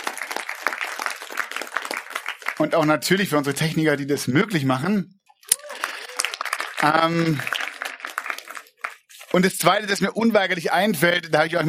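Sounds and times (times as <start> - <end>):
audience applauding: 0.0 - 3.6, 5.5 - 9.3
speech: 2.6 - 5.2, 6.8 - 7.6, 9.3 - 11.6.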